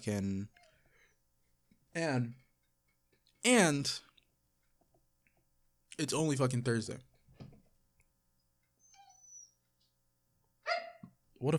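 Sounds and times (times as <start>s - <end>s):
speech: 0.0s - 0.6s, 2.0s - 2.4s, 3.4s - 4.1s, 6.0s - 7.1s, 11.4s - 11.5s
faint dogs whimpering outside a closed door: 8.8s - 9.7s, 10.7s - 11.1s.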